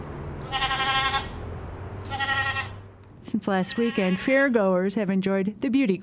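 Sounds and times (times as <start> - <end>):
low rumble of livestock barn noise: 0.2 - 4.5
prize goat bleating in a livestock barn while being bathed: 0.4 - 1.4, 2.0 - 2.8, 3.6 - 4.5
speech: 3.3 - 6.0.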